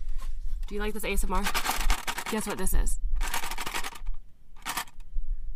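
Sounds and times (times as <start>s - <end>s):
speech: 0.7s - 1.8s, 2.3s - 3.0s
packaged set of cutlery crinkling and rattling: 0.7s - 5.0s.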